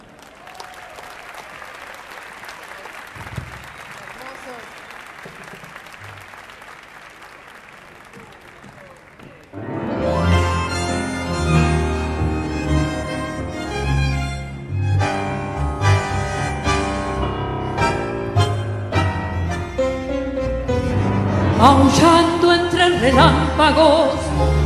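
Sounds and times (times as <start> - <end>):
audience applause: 0.0 - 9.7
music with sustained tones: 9.6 - 24.6.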